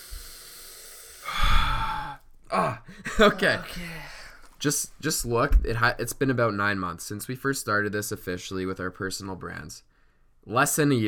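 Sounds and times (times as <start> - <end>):
person taking a deep breath: 0.0 - 2.2, 3.7 - 4.5
speech: 2.5 - 11.0
laughter: 3.0 - 3.8.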